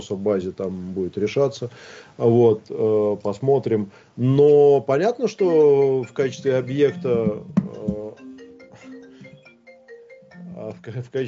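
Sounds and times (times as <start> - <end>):
speech: 0.0 - 8.0, 10.7 - 11.2
mobile phone ringing with a short electronic melody: 5.4 - 11.0.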